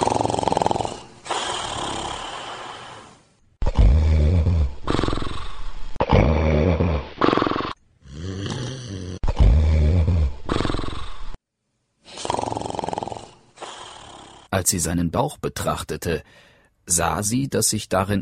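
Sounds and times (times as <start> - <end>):
wolf snoring: 0.0 - 11.4, 12.1 - 14.5
speech: 14.7 - 18.2.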